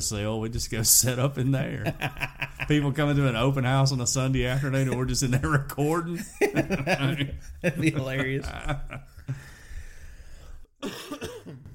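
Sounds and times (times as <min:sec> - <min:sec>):
speech: 0:00.0 - 0:09.4
laughter: 0:01.7 - 0:03.5, 0:04.3 - 0:09.5
person coughing: 0:10.8 - 0:11.7.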